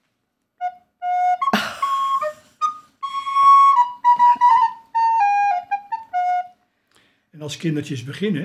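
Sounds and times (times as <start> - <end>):
soprano recorder playing a short bright melody: 0.6 - 6.7
speech: 7.5 - 8.4.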